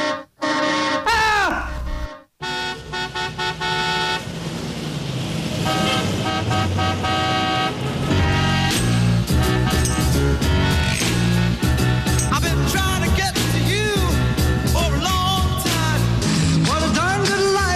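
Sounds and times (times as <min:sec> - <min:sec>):
car horns honking in busy street traffic: 0:00.0 - 0:04.4, 0:05.6 - 0:12.4
steady rumble of traffic engines: 0:02.6 - 0:17.7.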